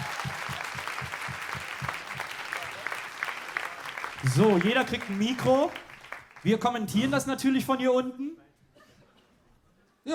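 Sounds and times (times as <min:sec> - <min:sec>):
audience applause: 0:00.0 - 0:06.7
speech: 0:04.2 - 0:05.8, 0:06.4 - 0:08.4.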